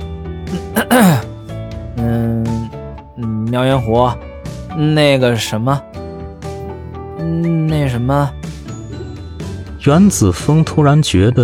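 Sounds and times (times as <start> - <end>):
person clearing throat: 0.5 - 1.3
speech: 3.6 - 6.0, 7.2 - 8.4, 9.8 - 11.4.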